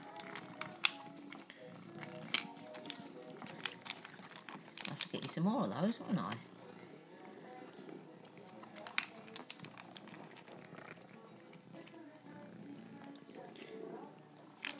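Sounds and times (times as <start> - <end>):
small clicks and rustles: 0.0 - 5.4, 8.4 - 12.0, 13.0 - 14.7
female cat purring: 0.0 - 14.7
speech: 5.4 - 6.5.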